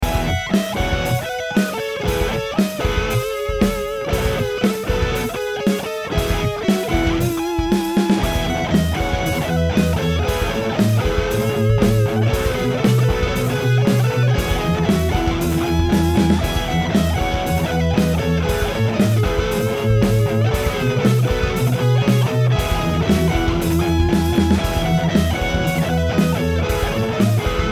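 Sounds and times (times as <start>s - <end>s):
overdriven electric guitar through 4x12 Vintage 30 cabinet: 0.0s - 27.7s.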